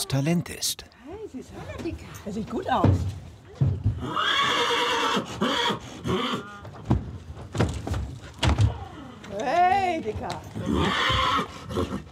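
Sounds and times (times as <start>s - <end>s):
speech: 0.1s - 6.6s, 9.4s - 12.1s
sharp knocks and thuds: 2.6s - 4.0s, 6.8s - 8.8s
purebred Hanoverian stallion whinnying: 3.9s - 6.8s, 10.5s - 12.1s.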